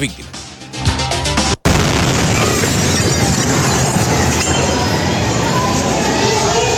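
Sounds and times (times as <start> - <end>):
speech: 0.0 - 0.4
heavy sustained rumbling blast: 1.6 - 6.6
loud explosion at a military unit: 1.6 - 6.6.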